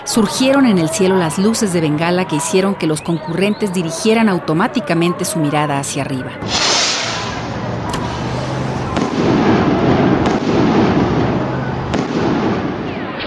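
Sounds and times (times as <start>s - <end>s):
speech: 0.1s - 6.7s
dense continuous crackling roar: 6.4s - 13.2s
gunshots fired at a crowded public gathering: 6.4s - 13.2s.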